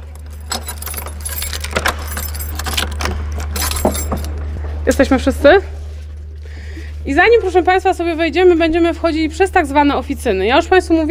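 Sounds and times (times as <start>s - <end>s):
metal keys jangling and clinking while unlocking a door: 0.0s - 4.4s
steady low hum of noise: 0.0s - 11.1s
speech: 4.9s - 5.8s, 7.1s - 11.1s.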